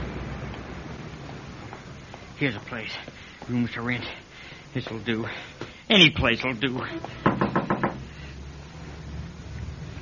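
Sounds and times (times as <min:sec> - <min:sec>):
low hum: 0:00.0 - 0:09.9
speech: 0:02.4 - 0:07.4
firm knocking on a wooden door: 0:07.2 - 0:08.0.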